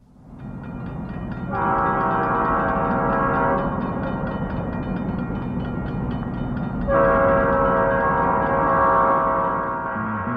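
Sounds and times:
train rumbling: 0:00.0 - 0:10.3
train horn blasts: 0:01.5 - 0:04.4, 0:06.9 - 0:10.3.

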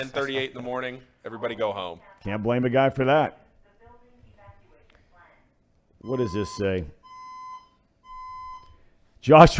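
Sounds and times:
speech: 0:00.0 - 0:03.4, 0:06.0 - 0:07.0, 0:09.2 - 0:09.5
building fire alarm electronic beeps: 0:06.0 - 0:08.9.

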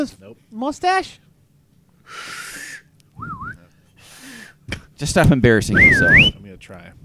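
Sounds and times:
speech: 0:00.0 - 0:01.2, 0:02.1 - 0:02.4, 0:05.0 - 0:07.0
person's failed attempt at a loud attention-getting whistle: 0:02.4 - 0:03.6, 0:05.7 - 0:06.3.

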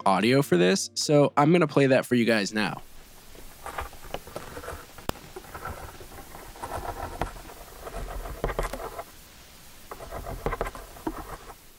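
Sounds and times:
speech: 0:00.0 - 0:02.9
wolf spider drumming its front legs on dry leaves: 0:02.8 - 0:11.7.

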